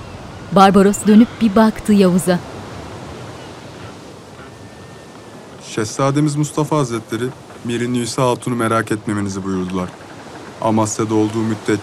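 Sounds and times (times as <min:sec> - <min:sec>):
sea waves heard from a ship's deck: 0:00.0 - 0:11.8
speech: 0:00.5 - 0:02.5, 0:05.8 - 0:10.0, 0:10.6 - 0:11.8.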